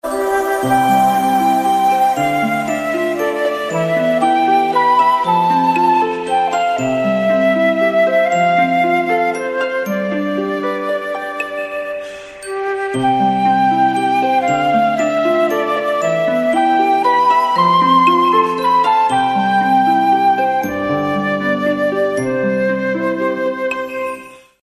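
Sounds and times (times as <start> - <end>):
beautiful flute ringtone: 0.0 - 24.6.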